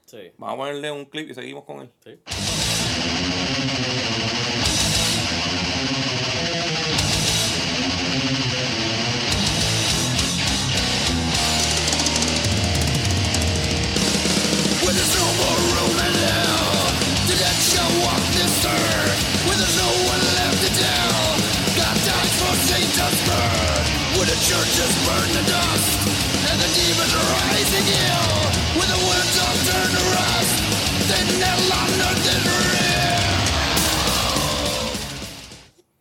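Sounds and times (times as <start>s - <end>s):
speech: 0.1s - 4.6s, 24.4s - 29.4s
thrash metal with distorted guitars and drums: 2.3s - 35.7s
raspy shouted vocals: 14.3s - 35.4s.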